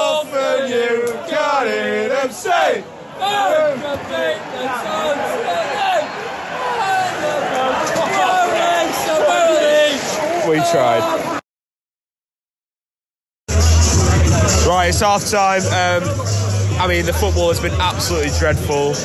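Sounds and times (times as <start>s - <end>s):
crowd voices chattering in a football stadium bar: 0.0s - 11.4s, 13.5s - 19.0s
people shouting in a football stadium bar: 0.0s - 11.4s
speech: 1.6s - 5.7s, 10.5s - 11.3s, 14.8s - 19.0s
DJ playing music in a football stadium bar: 13.5s - 19.0s.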